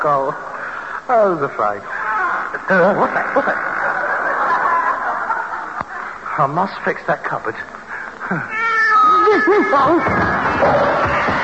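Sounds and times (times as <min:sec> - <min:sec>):
speech: 0:00.0 - 0:00.5, 0:01.1 - 0:03.7, 0:06.4 - 0:08.6, 0:09.3 - 0:11.4
faint hiss: 0:00.0 - 0:09.8
laughter: 0:02.0 - 0:06.4
cat yowling: 0:08.5 - 0:11.4.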